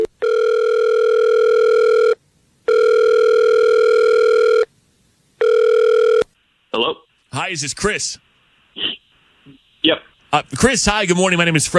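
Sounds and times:
steady electronic phone ringback tone: 0.0s - 4.7s, 5.4s - 6.2s
speech: 7.5s - 8.2s, 9.9s - 11.7s.

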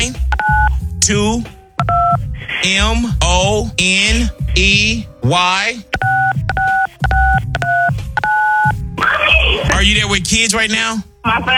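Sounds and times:
speech: 0.0s - 1.6s, 2.6s - 6.1s, 9.8s - 11.5s
touch-tone telephone keypad beeps dialing a contest code: 0.3s - 0.7s, 1.8s - 2.2s, 6.0s - 8.8s.

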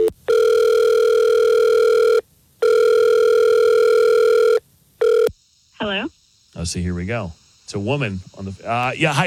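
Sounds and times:
outgoing phone call ringing tone: 0.0s - 5.3s
speech: 6.7s - 9.2s.

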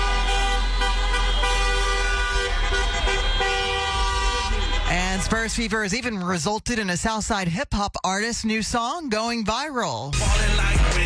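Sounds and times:
many car horns honking in celebration: 0.0s - 6.0s
street traffic rumble: 0.0s - 6.5s
speech: 5.3s - 10.8s.

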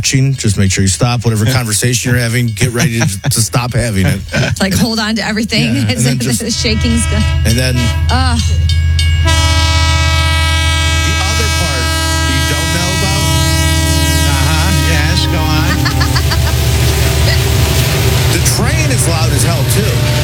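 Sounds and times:
speech: 0.0s - 9.5s
heavy rumble and clatter of train cars: 0.0s - 20.2s
laughter: 1.1s - 7.9s, 11.1s - 13.5s, 14.1s - 17.6s
train horn blaring in a long sustained blast: 5.8s - 20.2s.

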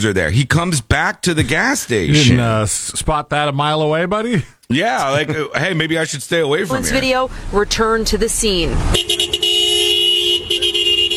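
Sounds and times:
laughter: 0.0s - 3.2s, 4.0s - 9.0s
speech: 0.0s - 9.4s
white Toyota SUV car horn honking at a gas station: 6.5s - 11.1s.

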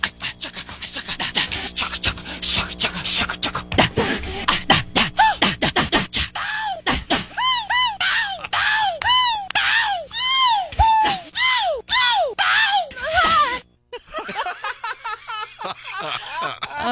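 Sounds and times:
noisy vocal burst from a pop song: 0.0s - 10.0s
laughter: 6.4s - 10.9s, 13.2s - 16.8s
high arched vocal yelps from a pop song: 7.4s - 13.6s.

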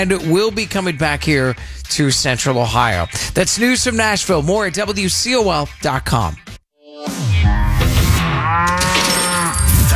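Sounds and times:
speech: 0.0s - 7.2s
cow moo sound effect: 8.2s - 9.7s.

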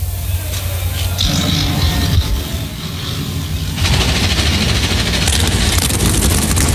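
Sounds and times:
NASCAR Cup Series race car engines starting before a race: 0.0s - 6.7s.

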